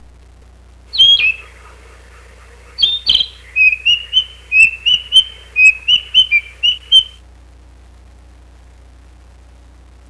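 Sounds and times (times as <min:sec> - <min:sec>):
kibitaki narcissus flycatcher: 0:00.9 - 0:07.2.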